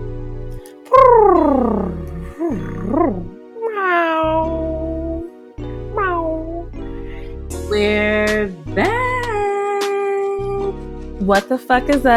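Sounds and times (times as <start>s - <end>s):
person meowing like a cat: 0.8s - 5.3s, 5.9s - 6.8s, 8.9s - 10.8s
speech: 11.3s - 12.1s.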